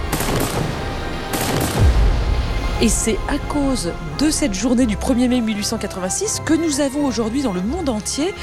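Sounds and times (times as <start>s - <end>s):
soldiers firing rifles in a May 1886 labor confrontation: 0.1s - 1.9s
speech: 2.8s - 8.4s.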